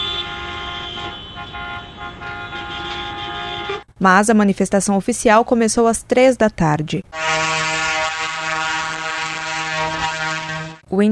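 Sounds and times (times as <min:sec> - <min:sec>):
truck, motorcycle and bicycle horns honking in protest: 0:00.0 - 0:03.9, 0:07.1 - 0:10.8
rumbling city street background: 0:00.0 - 0:11.1
speech: 0:04.0 - 0:07.2, 0:10.9 - 0:11.1.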